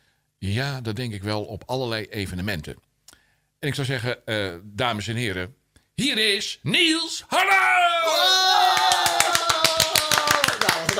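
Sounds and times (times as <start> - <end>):
speech: 0.4 - 2.9, 3.6 - 8.8
audience applause greeting a comedian and magician on stage: 8.6 - 10.9.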